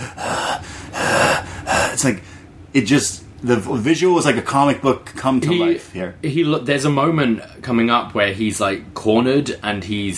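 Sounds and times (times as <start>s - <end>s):
voice imitating heavy panting breath: 0.0s - 2.1s
speech: 2.0s - 10.1s.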